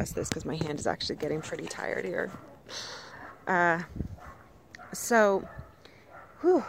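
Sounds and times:
speech: 0.0 - 4.2, 4.9 - 5.6, 6.4 - 6.6
dog barking from among nearby cabins: 2.3 - 3.5, 4.2 - 6.5.

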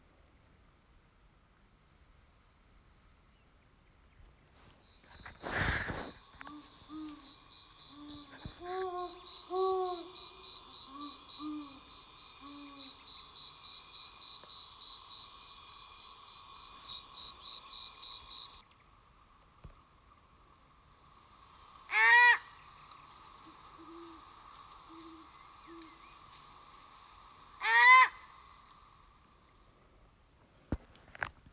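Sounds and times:
chorus of crickets and insects at night: 4.6 - 31.3
higher wavering owl call: 5.3 - 18.7, 21.1 - 29.6
mating pair of owls hooting in a courtship duet at night: 6.2 - 14.0, 21.8 - 28.9.

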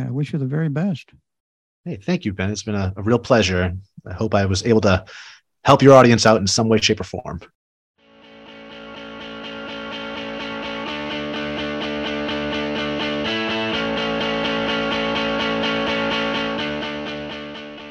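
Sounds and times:
speech: 0.2 - 1.2, 1.8 - 7.6
podcast theme music with distorted electric guitar: 8.0 - 17.8.

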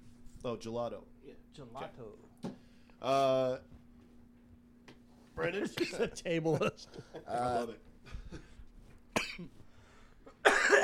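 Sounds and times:
speech: 0.4 - 2.4, 3.0 - 3.7, 5.4 - 8.5, 9.4 - 9.6
person coughing after a bong hit: 9.1 - 9.6, 10.3 - 10.8.

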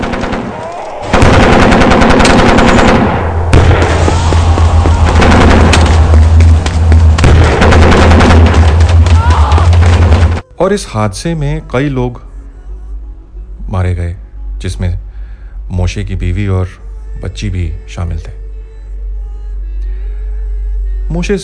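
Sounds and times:
machine gun fire: 0.0 - 10.4
heavy low booms: 3.0 - 9.0
speech: 10.6 - 12.3, 13.7 - 15.0, 15.7 - 18.4, 21.1 - 21.4.

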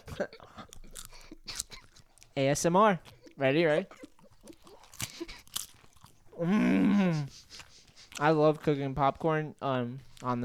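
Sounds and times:
chewing an apple cider donut from a New Hampshire farm: 0.0 - 10.4
speech: 0.2 - 0.8, 2.4 - 4.0, 6.4 - 7.4, 8.2 - 10.4.

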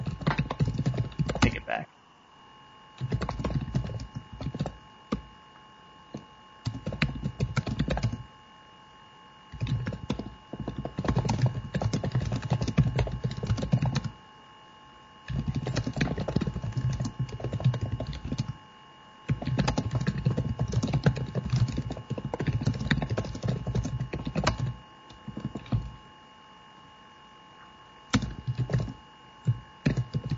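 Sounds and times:
typing on a computer keyboard: 0.0 - 1.5, 3.0 - 5.3, 6.1 - 8.2, 9.5 - 14.1, 15.3 - 18.6, 19.3 - 25.9, 28.1 - 30.3
speech: 1.7 - 2.0.

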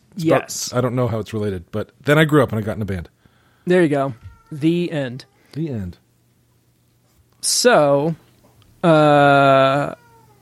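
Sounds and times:
speech: 0.2 - 6.0, 7.4 - 8.2, 8.8 - 10.0
upset male cat meowing: 4.1 - 5.4, 9.6 - 10.4.

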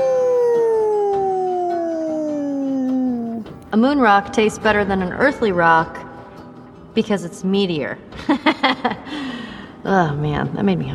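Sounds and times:
wolf howling: 0.0 - 3.6
speech: 3.7 - 6.0, 7.0 - 10.9.

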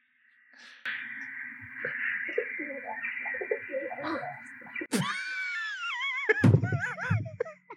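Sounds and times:
rock dove pigeons cooing: 0.9 - 4.9
laughter: 0.9 - 7.7.

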